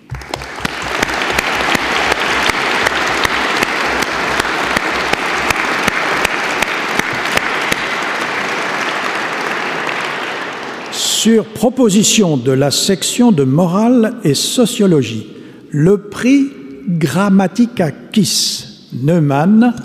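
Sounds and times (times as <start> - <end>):
audience applause: 0.0 - 11.3
speech: 11.2 - 19.8.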